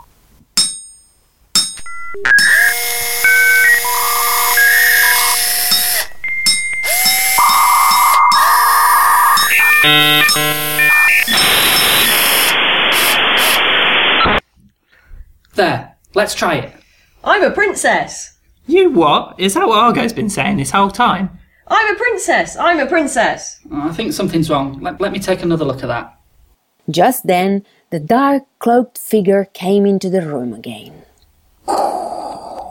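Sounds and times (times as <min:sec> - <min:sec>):
robot droid bleeps and whistles: 0:01.8 - 0:14.4
hissing static: 0:01.9 - 0:14.4
speech: 0:02.2 - 0:02.5, 0:15.6 - 0:26.2, 0:26.9 - 0:31.1, 0:31.7 - 0:32.1.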